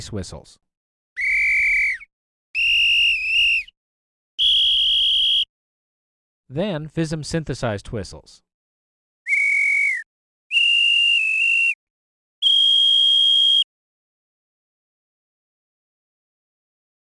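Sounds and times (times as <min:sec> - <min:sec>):
police whistles: 0:01.2 - 0:03.7, 0:04.4 - 0:05.5, 0:09.3 - 0:11.8, 0:12.4 - 0:13.6.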